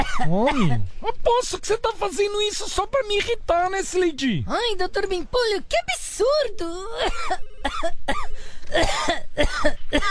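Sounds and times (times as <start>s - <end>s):
loud harsh raspy coughing: 0.0s - 0.9s, 7.0s - 10.0s
speech: 0.2s - 10.0s.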